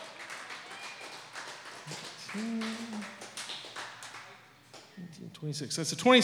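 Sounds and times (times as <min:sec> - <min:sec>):
audience applauding a poet: 0:00.0 - 0:04.9
person whooping in the audience: 0:01.9 - 0:03.2
speech: 0:02.3 - 0:03.0, 0:05.2 - 0:06.2.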